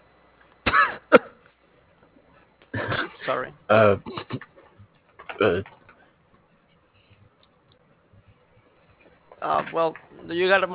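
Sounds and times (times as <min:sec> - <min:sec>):
person in a hospital coughing: 0:00.7 - 0:01.4, 0:02.7 - 0:04.5
speech: 0:01.1 - 0:01.3, 0:03.3 - 0:04.4, 0:05.4 - 0:05.7, 0:09.8 - 0:10.7.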